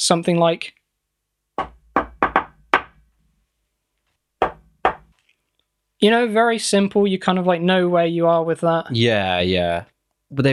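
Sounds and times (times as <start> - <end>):
speech: 0.0 - 0.8, 6.0 - 10.5
imitation Bigfoot tree knocks on a hard surface: 1.6 - 3.0, 4.4 - 5.1.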